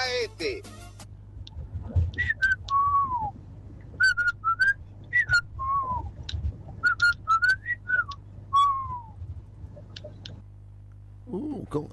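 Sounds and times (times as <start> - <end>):
person speaking: 0.0 - 0.8
low steady hum: 0.0 - 11.9
person whistling short warbling notes: 2.2 - 3.3, 4.0 - 6.1, 6.8 - 9.2.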